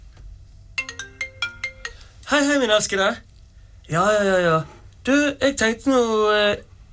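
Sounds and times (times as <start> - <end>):
faint low hum: 0.0 - 6.9
phone ringtone with bright plucked-sounding notes: 0.8 - 2.2
speech: 2.3 - 3.3, 3.9 - 6.7.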